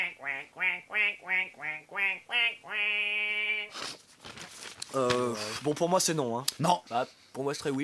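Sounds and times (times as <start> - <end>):
duck quacking: 0.0 - 3.7
rustling noise: 3.7 - 6.2
speech: 5.0 - 7.8.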